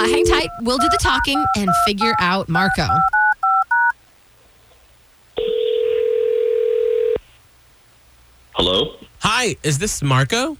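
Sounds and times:
phone keypad dialing beeps: 0.0 - 3.9
ringback tone of an outgoing phone call: 0.0 - 3.9, 5.4 - 7.2
speech: 0.4 - 3.2, 8.6 - 10.5.

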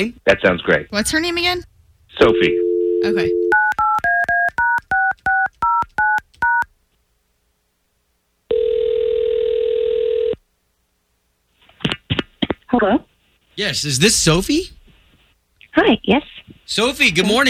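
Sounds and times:
speech: 0.0 - 3.4, 12.8 - 14.8, 15.8 - 17.4
telephone ringing tone as the call connects: 2.2 - 6.6, 8.5 - 10.4.

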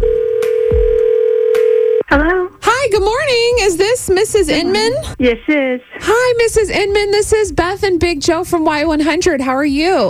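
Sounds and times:
telephone ringing tone on an outgoing call: 0.0 - 2.2
speech: 2.1 - 10.0.

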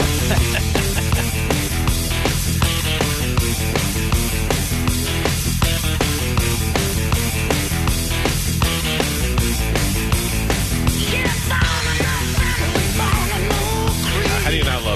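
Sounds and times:
vocalist singing over the full band: 0.0 - 1.4, 11.0 - 14.9
laughter: 0.0 - 1.9
loud driving hard rock music with distorted guitars: 0.0 - 14.9.

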